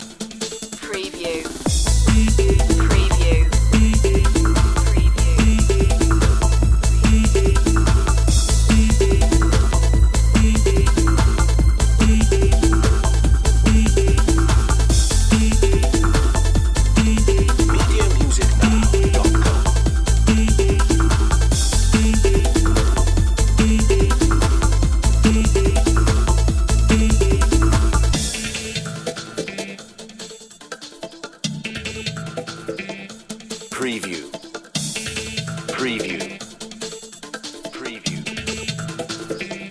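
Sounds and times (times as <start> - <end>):
electronic music loop: 0.0 - 30.3, 31.6 - 36.8, 37.4 - 39.6.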